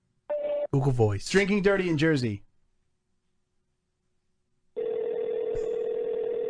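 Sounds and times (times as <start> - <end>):
speech: 0.7 - 2.5
steady telephone dialing tone: 4.8 - 6.4.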